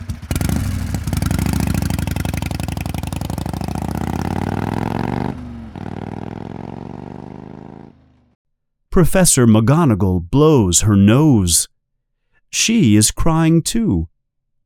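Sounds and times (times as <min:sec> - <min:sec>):
huge motorcycle engine roaring as it rides off into the night: 0:00.0 - 0:08.4
speech: 0:09.0 - 0:11.7, 0:12.5 - 0:14.1.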